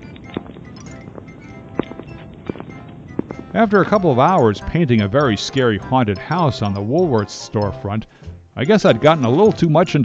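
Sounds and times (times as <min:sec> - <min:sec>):
footsteps thudding on a hard surface: 0:00.0 - 0:05.6
steady hiss: 0:00.0 - 0:10.0
speech: 0:03.5 - 0:10.0.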